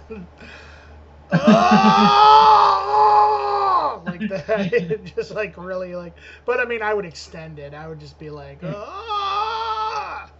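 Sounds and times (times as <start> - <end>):
speech: 0.1 - 0.7, 4.3 - 9.3
loud sustained human scream voiced as a demonstration: 1.3 - 4.0, 8.6 - 10.3.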